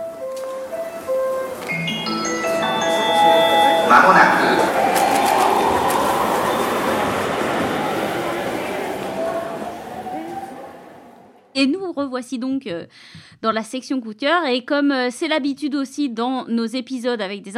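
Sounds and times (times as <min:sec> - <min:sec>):
short musical jingle with rising synth tones: 0:01.6 - 0:11.2
speech: 0:03.9 - 0:04.8, 0:11.6 - 0:17.5.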